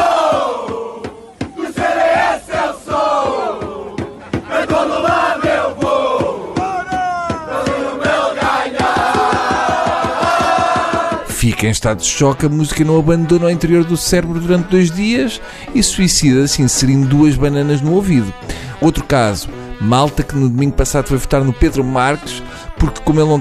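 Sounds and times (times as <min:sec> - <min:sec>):
group of politicians singing a campaign song: 0:00.0 - 0:11.4
steady rhythmic beat or clapping: 0:00.0 - 0:11.7
speech: 0:11.6 - 0:23.3.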